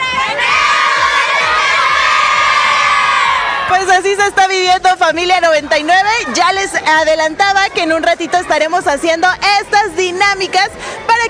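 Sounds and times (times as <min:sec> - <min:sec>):
large group of children cheering in unison on a count of three: 0:00.0 - 0:03.7
crowd noise: 0:00.0 - 0:11.2
speech: 0:03.7 - 0:11.2.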